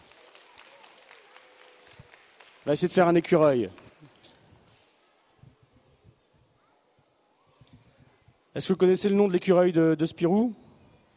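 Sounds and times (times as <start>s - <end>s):
audience applause: 0.0s - 3.2s
speech: 2.6s - 3.8s, 8.6s - 10.6s.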